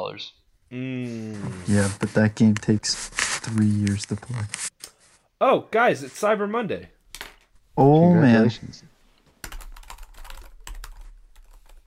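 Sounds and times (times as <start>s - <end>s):
speech: 0.1s - 4.7s, 5.4s - 7.0s, 7.8s - 8.9s
typing on a computer keyboard: 9.4s - 11.8s.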